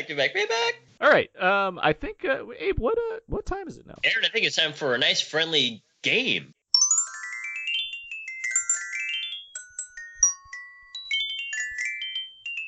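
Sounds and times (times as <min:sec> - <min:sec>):
speech: 0:00.0 - 0:06.6
electronic phone ringtone jingle: 0:06.8 - 0:12.6.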